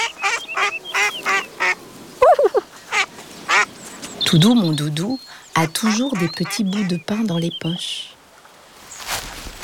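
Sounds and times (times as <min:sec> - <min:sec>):
ducks quacking at a pond: 0:00.0 - 0:01.8, 0:02.4 - 0:03.7, 0:04.3 - 0:07.6
faint outdoor background: 0:00.0 - 0:09.6
speech: 0:04.3 - 0:08.1.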